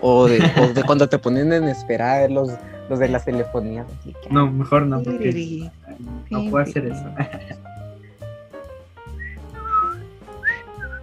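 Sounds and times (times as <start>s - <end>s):
speech: 0.0s - 7.6s
steady low accompaniment: 0.0s - 11.0s
laughter: 0.1s - 1.2s, 6.8s - 7.6s
person whistling a short bouncy tune: 9.1s - 11.0s.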